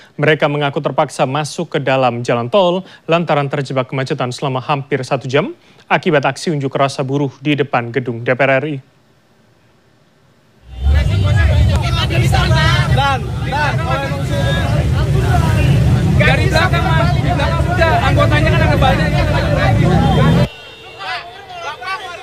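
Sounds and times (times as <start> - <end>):
speech: 0.2 - 8.9
steady rumble of motorcycle engines: 10.6 - 20.5
quieter chatter: 10.6 - 22.2
motorcyclists shouting and arguing with traffic police at a toll road gate: 10.7 - 22.2.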